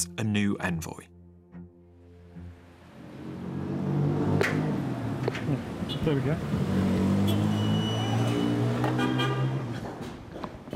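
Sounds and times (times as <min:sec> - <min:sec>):
speech: 0:00.0 - 0:01.2, 0:05.5 - 0:06.8
vehicles rumbling past in busy city street traffic: 0:02.0 - 0:10.7
car honks in city traffic: 0:05.8 - 0:06.3, 0:07.1 - 0:09.8
long loud car horn blast: 0:07.2 - 0:09.7.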